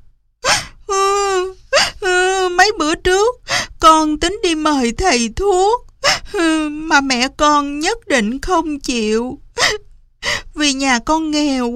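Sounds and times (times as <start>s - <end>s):
girl bursting into sobbing cries: 0.4s - 3.8s, 6.0s - 7.0s, 9.5s - 10.6s
speech: 2.7s - 11.7s.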